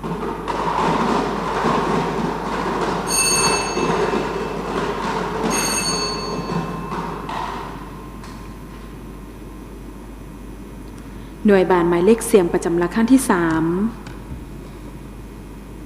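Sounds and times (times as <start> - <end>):
lottery number drum spinning during a prize draw: 0.0 - 9.4
high ringing squeal-like tones: 3.1 - 4.8, 5.4 - 8.8
speech: 11.5 - 14.0.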